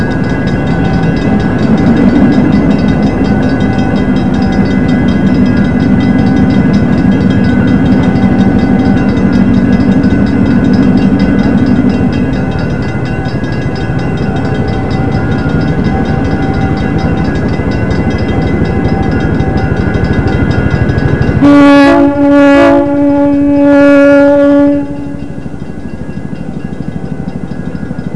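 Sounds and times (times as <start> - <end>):
trains: 0.0 - 28.1.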